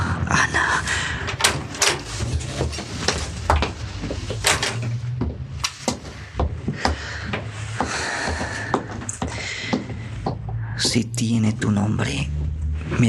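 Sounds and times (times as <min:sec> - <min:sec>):
low rumbling background: 0:00.0 - 0:13.0
country estate gate door pushed open: 0:01.2 - 0:03.4, 0:04.2 - 0:05.9
gate metallic clicks and rattles: 0:01.2 - 0:03.6, 0:04.2 - 0:05.0
speech: 0:10.9 - 0:13.0.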